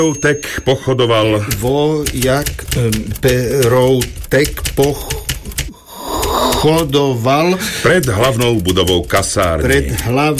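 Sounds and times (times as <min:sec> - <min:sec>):
speech: 0:00.0 - 0:05.6, 0:06.4 - 0:10.3
keyboard typing up a medical record: 0:00.0 - 0:10.3.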